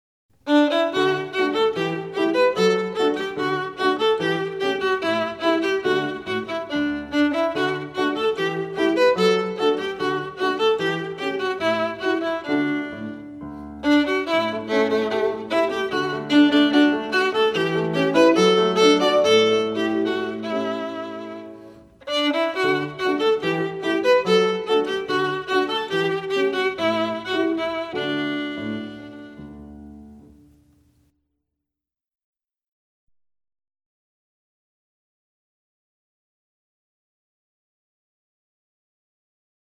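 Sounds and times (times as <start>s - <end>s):
allegretto violin piece: 0.4s - 30.8s.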